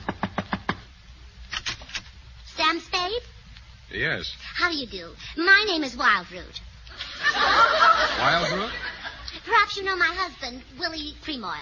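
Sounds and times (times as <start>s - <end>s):
knocking on a door: 0.0s - 0.8s
speech: 3.9s - 6.7s, 7.4s - 8.8s, 9.5s - 11.5s
laughter: 6.9s - 9.3s.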